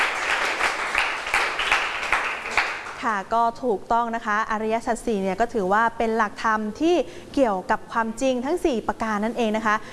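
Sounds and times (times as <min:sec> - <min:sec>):
class applauding a student: 0:00.0 - 0:03.0
speech: 0:03.0 - 0:09.9.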